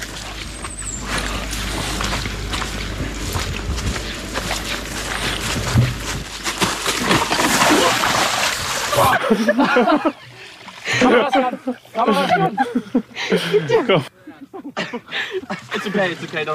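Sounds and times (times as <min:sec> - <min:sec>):
wind and water rushing near a boat: 0:00.0 - 0:12.6
water churning and sloshing: 0:00.0 - 0:14.0, 0:14.8 - 0:16.5
heavy splash of someone falling into water: 0:06.0 - 0:09.2
laughter: 0:08.9 - 0:16.3
speech: 0:09.3 - 0:10.3, 0:11.0 - 0:14.2, 0:14.8 - 0:16.5.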